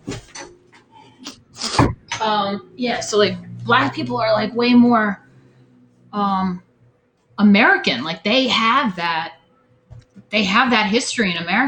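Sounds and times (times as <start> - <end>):
door closing with knocks, rattles and a heavy thud: 1.7 - 2.1
speech: 2.2 - 5.2, 6.1 - 6.7, 7.4 - 9.4, 10.3 - 11.6.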